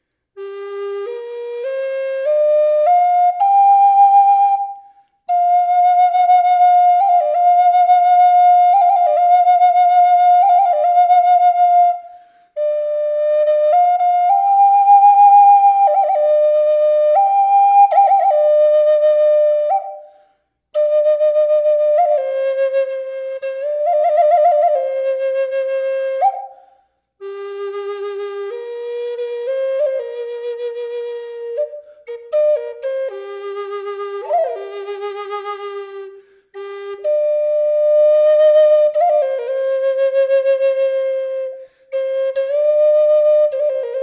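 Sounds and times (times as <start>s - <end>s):
flute with reverb: 0.4s - 44.0s.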